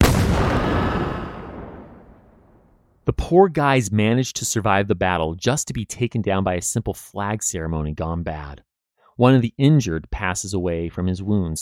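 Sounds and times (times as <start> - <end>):
heavy cannon blast of a salute at Fort Sumter: 0.0 - 3.0
speech: 3.1 - 11.6.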